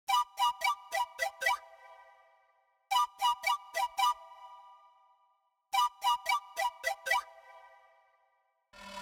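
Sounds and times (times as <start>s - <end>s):
pan flute in B minor: 0.1s - 1.8s, 2.9s - 4.7s, 5.8s - 7.4s.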